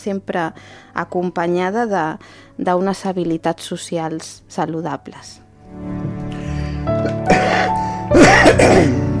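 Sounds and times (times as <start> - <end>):
speech: 0.0 - 6.2, 7.6 - 9.1
person coughing: 7.1 - 9.1.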